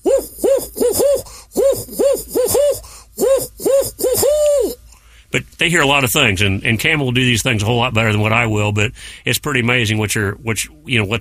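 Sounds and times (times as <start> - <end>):
person imitating a barred owl hooting: 0.0 - 4.9
speech: 5.6 - 11.1.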